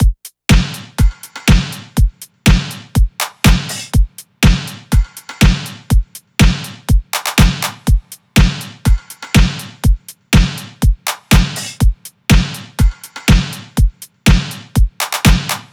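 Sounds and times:
full drum loop: 0.0 - 15.7.

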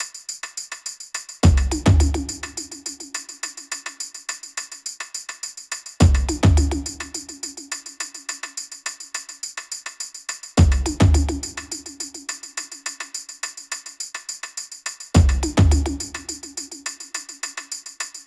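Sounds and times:
percussion top drum loop: 0.0 - 18.2.

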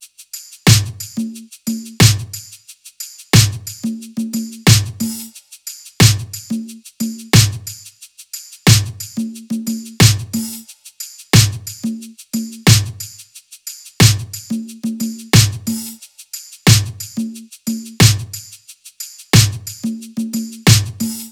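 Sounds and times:
drum loop: 0.7 - 2.4, 3.4 - 5.3, 6.0 - 7.8, 8.7 - 10.6, 11.4 - 13.1, 14.0 - 16.0, 16.7 - 18.4, 19.4 - 21.3.

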